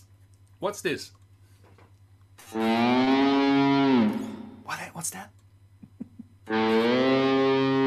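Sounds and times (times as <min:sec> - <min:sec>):
speech: 0:00.6 - 0:01.2, 0:05.0 - 0:05.4
distorted electric guitar imitating a cow's moo: 0:02.4 - 0:04.7, 0:06.5 - 0:07.8.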